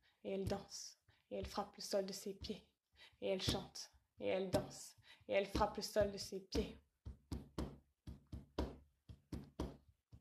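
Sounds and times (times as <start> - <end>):
speech: 0.2 - 6.8
she-wolf's heartbeat, dull regular thumping: 5.6 - 9.8.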